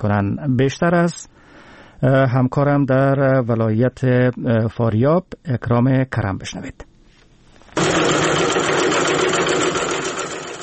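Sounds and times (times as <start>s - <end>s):
speech: 0.0s - 6.9s
sewing machines running as young women stitch face masks: 7.8s - 10.6s.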